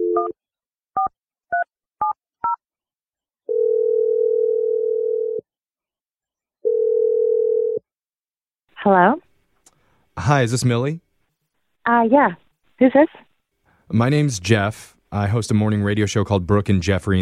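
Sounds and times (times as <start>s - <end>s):
speech: 0.2s - 1.2s, 8.8s - 9.2s, 10.2s - 11.0s, 11.9s - 13.3s, 13.9s - 17.2s
telephone ringback tone: 3.5s - 5.4s, 6.6s - 7.8s.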